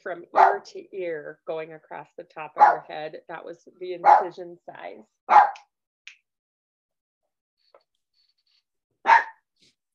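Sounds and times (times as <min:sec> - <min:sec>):
speech: 0:00.0 - 0:05.7
dog barking: 0:00.4 - 0:00.6, 0:02.6 - 0:02.9, 0:04.0 - 0:04.4, 0:05.3 - 0:05.6, 0:09.0 - 0:09.5
dog yipping: 0:05.3 - 0:05.6, 0:09.0 - 0:09.4.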